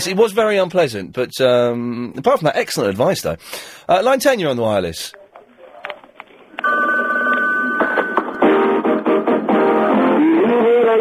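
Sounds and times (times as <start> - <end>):
speech: 0.0 - 5.2
telephone ringing: 6.4 - 9.2
music playing behind answering machine message: 6.6 - 10.9.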